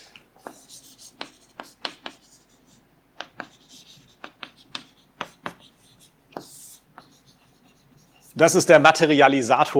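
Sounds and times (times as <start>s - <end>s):
writing on a board: 0.0s - 8.7s
speech: 8.4s - 9.7s.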